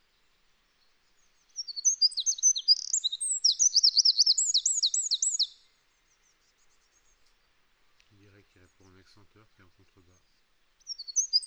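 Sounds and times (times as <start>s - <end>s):
Eurasian wren Troglodytes troglodytes singing a vigorous high-pitched phrase: 0.8s - 7.2s, 10.8s - 11.4s.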